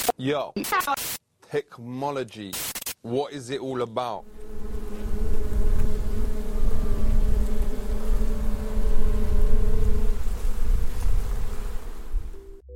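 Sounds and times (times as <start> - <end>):
speech: 0.2 - 4.4
swarm of angry bees buzzing beside an almond orchard in central California: 4.2 - 12.6.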